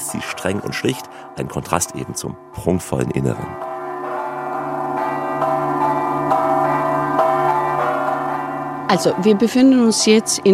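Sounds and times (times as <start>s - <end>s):
church bells of a co-cathedral in Malta ringing: 0.0s - 10.5s
speech: 0.1s - 3.7s, 8.9s - 10.5s.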